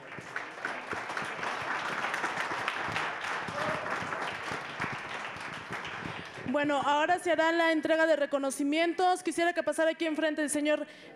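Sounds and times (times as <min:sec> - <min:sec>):
audience at a public forum on water in a desert region applauding the speakers: 0:00.0 - 0:06.6
speech: 0:06.6 - 0:11.1.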